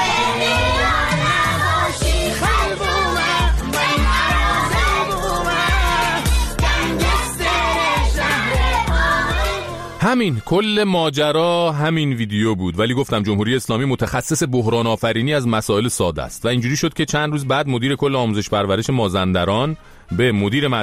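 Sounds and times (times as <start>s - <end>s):
schoolchildren singing together in a classroom in Qaem Shahr: 0.0s - 10.0s
upbeat recorded song with a steady thumping beat: 0.0s - 20.8s
speech: 10.1s - 20.8s.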